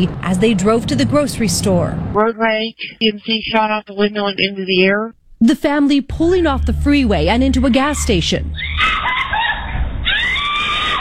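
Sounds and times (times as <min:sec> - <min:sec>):
speech: 0:00.0 - 0:09.1
mother's piercing scream on surveillance video at a gas station: 0:07.6 - 0:11.0.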